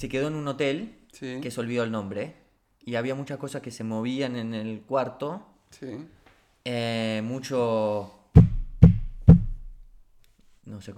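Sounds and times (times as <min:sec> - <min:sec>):
speech: 0:00.0 - 0:08.2, 0:10.6 - 0:10.9
firm knocking on a door: 0:08.4 - 0:09.8.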